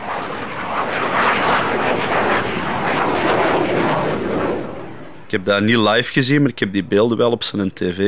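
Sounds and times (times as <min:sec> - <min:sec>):
jet aircraft roaring past: 0:00.0 - 0:08.0
speech: 0:05.3 - 0:08.0.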